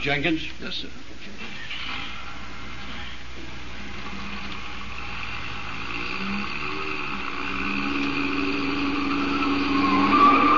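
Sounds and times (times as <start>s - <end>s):
speech: 0.0s - 2.1s
car engine roaring and accelerating: 4.0s - 10.5s
car tires squealing around a bend: 6.0s - 10.5s.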